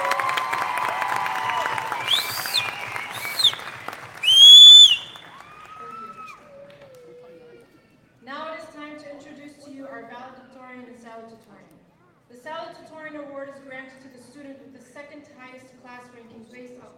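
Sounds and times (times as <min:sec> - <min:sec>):
crowd clapping and cheering: 0:00.0 - 0:07.1
sharp whistles: 0:01.6 - 0:05.4.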